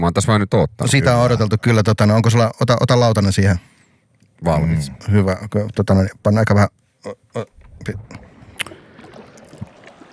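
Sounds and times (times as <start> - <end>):
speech: 0.0 - 3.7, 4.4 - 8.2
drink splashing and lapping as poured: 7.4 - 10.1.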